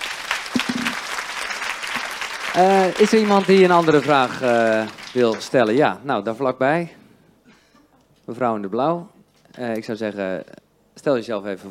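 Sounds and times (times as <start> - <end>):
audience applause: 0.0 - 5.9
speech: 2.6 - 7.0, 8.3 - 11.6.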